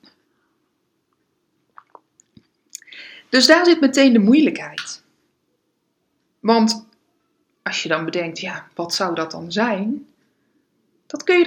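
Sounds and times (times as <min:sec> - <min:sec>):
person sipping tea: 0:01.7 - 0:02.9
speech: 0:03.3 - 0:05.0, 0:06.4 - 0:06.9, 0:07.7 - 0:10.1, 0:11.1 - 0:11.4.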